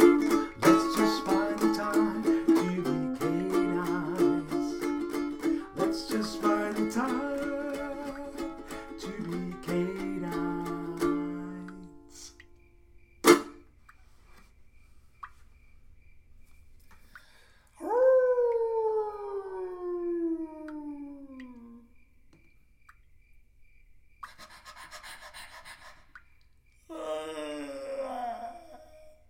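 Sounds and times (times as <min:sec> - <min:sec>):
person howling like a dog: 0:00.0 - 0:11.6, 0:17.8 - 0:21.9, 0:26.9 - 0:29.2.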